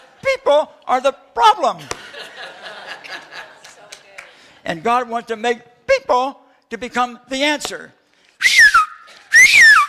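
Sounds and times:
speech: 0:00.3 - 0:02.0, 0:04.6 - 0:08.0
laughter: 0:01.8 - 0:03.9
person whistling sliding phrases: 0:08.4 - 0:09.8.

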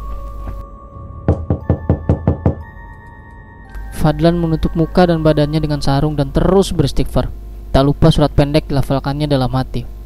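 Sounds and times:
low hum with steady tones: 0:00.0 - 0:10.0
loud pounding knocks on the door of a house: 0:01.3 - 0:02.7
speech: 0:04.0 - 0:10.0.

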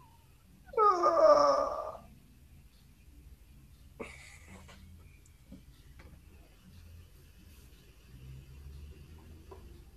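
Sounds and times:
dog whimpering: 0:00.7 - 0:02.1.

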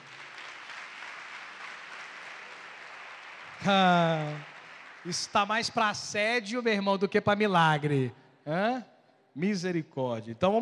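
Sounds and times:
crowd clapping: 0:00.0 - 0:06.2
speech: 0:03.6 - 0:10.6.

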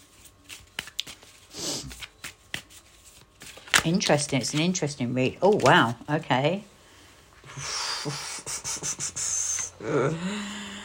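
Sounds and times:
fortune-telling cards being shuffled by hand: 0:00.0 - 0:06.1
speech: 0:03.8 - 0:06.7, 0:08.0 - 0:08.2, 0:09.8 - 0:10.6.

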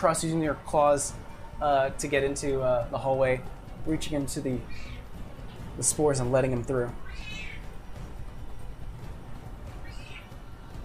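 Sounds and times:
speech: 0:00.0 - 0:05.0, 0:05.8 - 0:07.4
steady low rumble: 0:00.0 - 0:10.8
pet cat meowing: 0:07.0 - 0:07.7, 0:09.9 - 0:10.3.

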